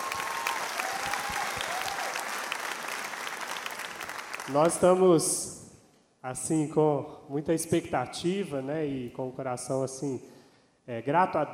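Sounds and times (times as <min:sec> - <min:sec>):
crowd clapping: 0:00.0 - 0:05.0
speech: 0:04.5 - 0:05.6, 0:06.2 - 0:11.5.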